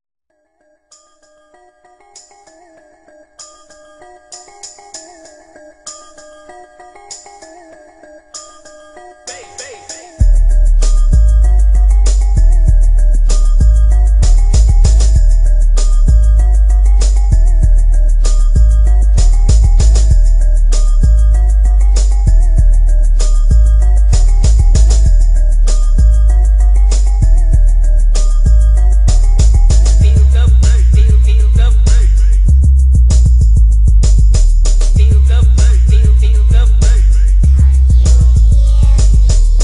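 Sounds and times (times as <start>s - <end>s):
boosted bass test: 10.2s - 39.6s.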